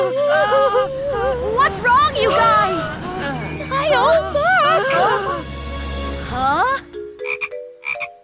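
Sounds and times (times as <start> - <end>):
rumbling noise: 0.2 - 6.9
frog croaking in quick bursts: 6.9 - 8.2.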